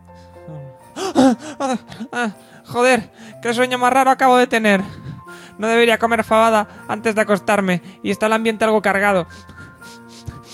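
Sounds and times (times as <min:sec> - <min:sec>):
man waking agitated, gasping and panting: 0:00.1 - 0:03.4, 0:04.8 - 0:05.6, 0:09.3 - 0:10.5
man groaning on waking agitated: 0:01.0 - 0:02.3
speech: 0:01.2 - 0:05.0, 0:05.6 - 0:10.0.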